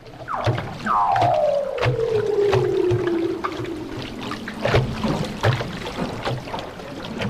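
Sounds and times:
leopard seal descending trill recorded underwater by hydrophone: 0:00.0 - 0:06.8
rhythmic clicks: 0:00.0 - 0:07.2
steady underwater watery background: 0:00.0 - 0:07.2
fainter leopard seal calls: 0:00.3 - 0:05.4.

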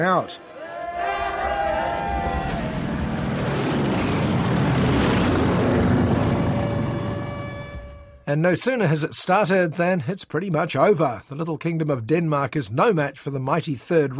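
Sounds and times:
speech: 0:00.0 - 0:00.5, 0:08.3 - 0:14.1
low-flying propeller planes roaring overhead: 0:01.1 - 0:07.9.

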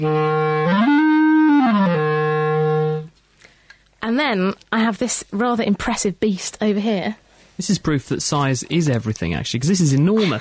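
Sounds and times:
speech: 0:00.0 - 0:00.4, 0:04.2 - 0:10.3
wooden B-flat clarinet about a metre long playing: 0:00.0 - 0:03.1.

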